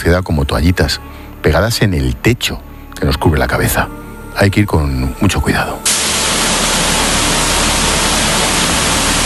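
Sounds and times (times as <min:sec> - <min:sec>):
speech: 0:00.0 - 0:06.2
deafening rushing water in sewer channel: 0:05.9 - 0:09.2.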